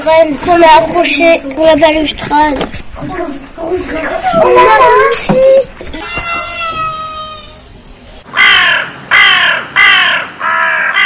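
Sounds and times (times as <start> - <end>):
speech: 0.0 - 6.3
child talking: 0.0 - 7.6
large all-black crow cawing loudly: 8.3 - 11.0.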